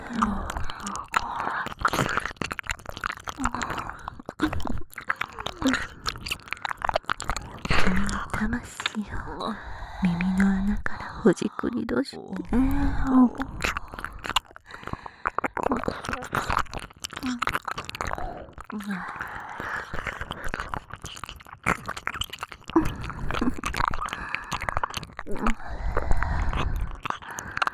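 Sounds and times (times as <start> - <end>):
chewing and biting in the mouth: 0.0 - 9.1, 12.4 - 27.7
speech: 9.6 - 13.8.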